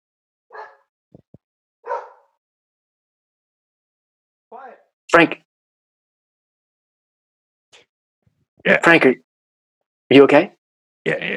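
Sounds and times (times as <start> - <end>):
dog barking excitedly with low huffs: 0.5 - 0.8, 1.8 - 2.4
speech: 4.5 - 5.4, 8.6 - 9.3, 10.1 - 11.3.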